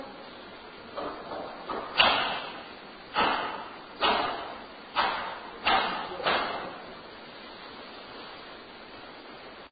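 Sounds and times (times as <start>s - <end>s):
loud clear knocking in a museum: 0.9s - 6.8s.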